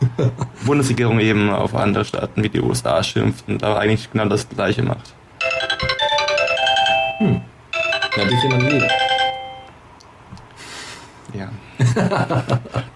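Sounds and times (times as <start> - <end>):
speech: 0.2 - 5.2, 7.2 - 7.5, 8.2 - 9.0, 11.3 - 12.9
phone ringtone playing a bright melodic chiming tune: 5.4 - 9.7
laughter: 11.8 - 12.9.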